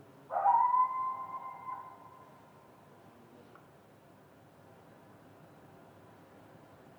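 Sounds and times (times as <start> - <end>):
upset coyote howling near a wildfire: 0.3 - 2.3.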